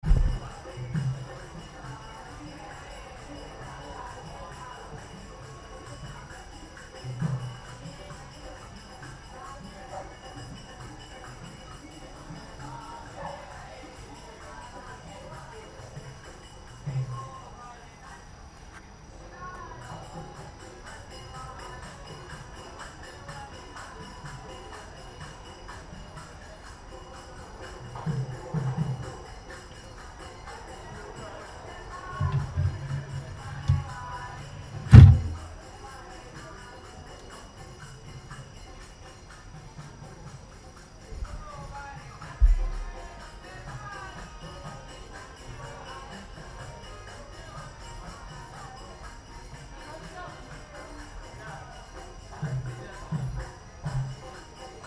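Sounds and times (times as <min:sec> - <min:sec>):
distant devotees chanting in Vietnam: 0:00.0 - 0:54.8.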